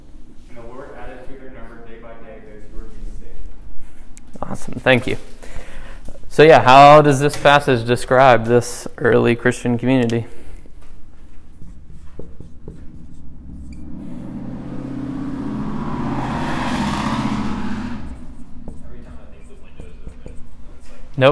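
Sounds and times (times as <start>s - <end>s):
speech: 4.5s - 5.3s, 6.4s - 10.4s, 21.2s - 21.3s
quieter traffic rumble: 10.4s - 21.3s
loud car passing outside: 11.1s - 21.2s.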